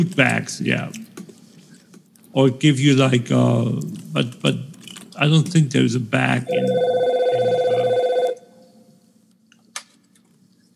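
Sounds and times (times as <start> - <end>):
speech: 0.0 - 1.2, 2.3 - 7.1
electronic phone ringing with a warbling tone: 6.5 - 8.6.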